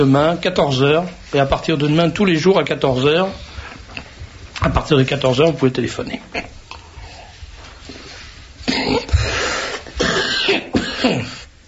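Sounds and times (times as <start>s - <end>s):
speech: 0.0s - 3.5s, 4.6s - 6.5s
person coughing harshly: 8.6s - 11.5s.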